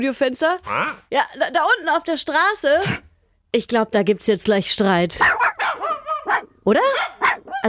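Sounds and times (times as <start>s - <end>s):
speech: 0.0s - 5.5s, 6.6s - 7.6s
two dogs barking in sharp yaps: 5.2s - 7.6s.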